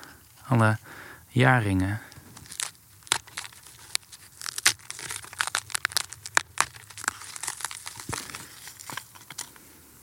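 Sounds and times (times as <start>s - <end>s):
speech: 0.5s - 2.1s
brittle charred wood crumbling and snapping between fingers: 1.9s - 9.7s.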